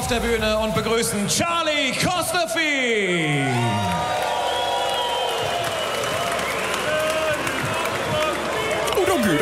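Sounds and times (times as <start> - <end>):
speech: 0.1 - 4.5, 9.1 - 9.4
large audience applauding: 3.2 - 9.4
scattered whoops and shouts from the audience: 3.3 - 8.3.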